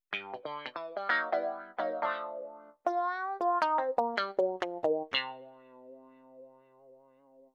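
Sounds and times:
synthesizer wah guitar: 0.1 - 6.8.

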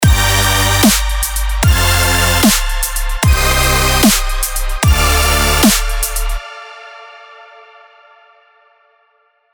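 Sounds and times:
melodic dubstep electro drop: 0.0 - 6.4.

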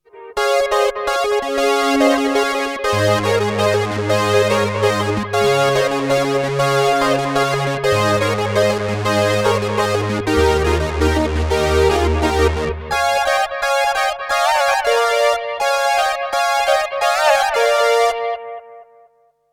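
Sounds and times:
synth through bucket brigade delay pedal: 0.1 - 19.1.

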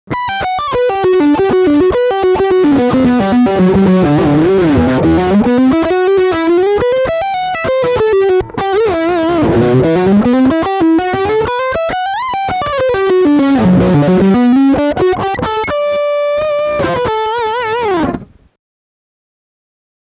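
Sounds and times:
distorted electric guitar lick on humbucker pickup: 0.1 - 18.5.

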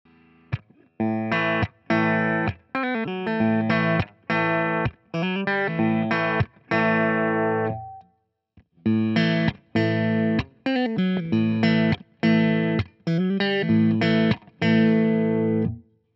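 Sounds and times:
clean Fender Nashville Telecaster electric guitar: 0.1 - 8.1, 8.8 - 15.9.

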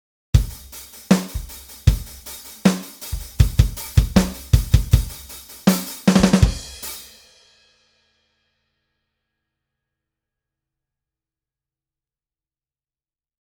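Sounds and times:
EZdrummer drum groove: 0.4 - 7.2.

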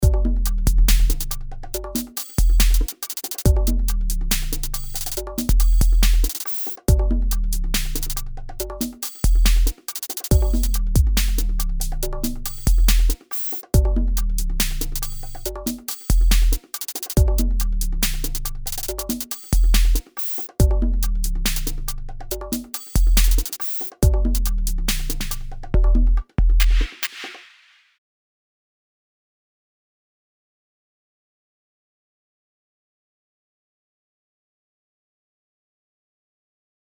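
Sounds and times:
drum group: 0.0 - 27.8.

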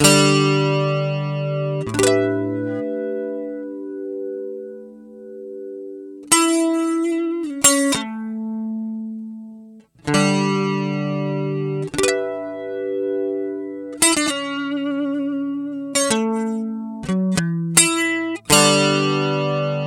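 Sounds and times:
hot guitar chords: 0.0 - 19.8.

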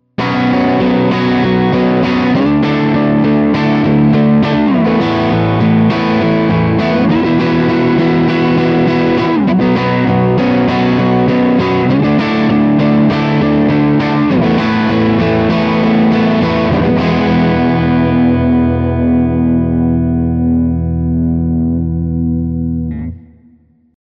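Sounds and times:
Framus Diablo Pro electric guitar with neck humbucker crunch: 0.0 - 23.9.

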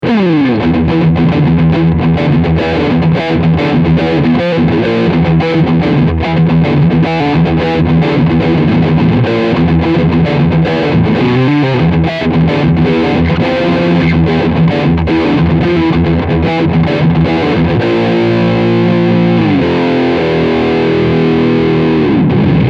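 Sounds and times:
riff on humbucker electric guitar: 0.0 - 22.6.

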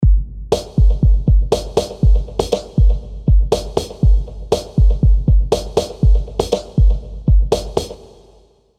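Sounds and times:
drum loop: 0.0 - 8.4.

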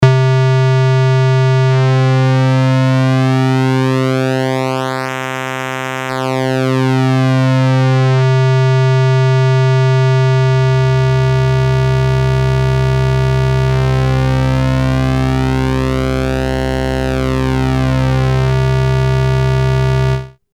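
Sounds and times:
Korg NTS-1 synthesizer square wave tone: 0.0 - 20.4.

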